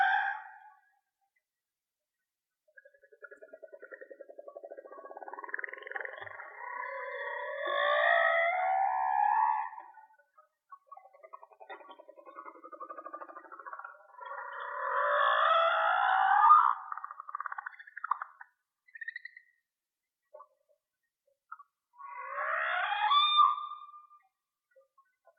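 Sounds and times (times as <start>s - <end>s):
whale song: 2.9s - 10.3s, 13.4s - 17.9s, 22.0s - 24.4s.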